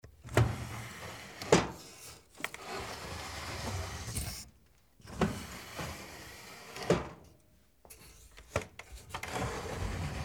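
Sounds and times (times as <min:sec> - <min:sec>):
sliding door: 0:00.3 - 0:02.0, 0:02.6 - 0:04.4, 0:05.0 - 0:07.2, 0:09.0 - 0:10.2.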